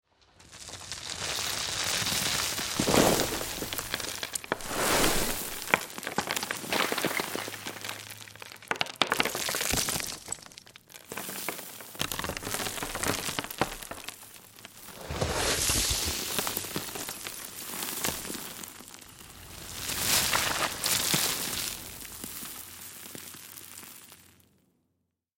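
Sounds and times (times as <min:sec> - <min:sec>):
dirt and dust: 0:00.6 - 0:24.2.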